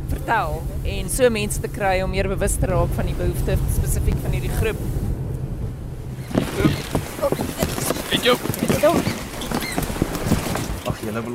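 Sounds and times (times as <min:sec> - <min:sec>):
faint creaks: 0:00.0 - 0:11.3
speech: 0:00.3 - 0:05.1, 0:06.6 - 0:09.2, 0:11.0 - 0:11.3
African penguins pattering and scrabbling inside transport containers on an island: 0:06.3 - 0:11.3.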